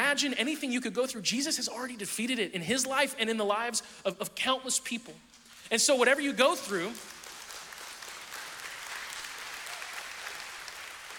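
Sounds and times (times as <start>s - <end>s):
speech: 0.2s - 7.2s
audience applause of many hands clapping: 6.4s - 11.1s.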